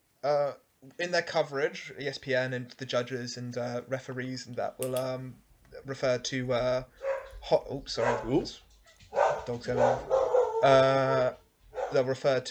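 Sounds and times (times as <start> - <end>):
speech: 0.2 - 8.6, 9.5 - 12.4
dogs barking and whimpering: 6.9 - 12.1.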